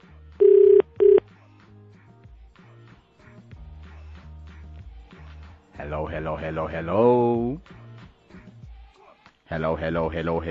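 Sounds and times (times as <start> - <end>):
telephone ringing with buzzing bursts: 0.4 - 1.2
speech: 5.8 - 7.8, 9.5 - 10.4.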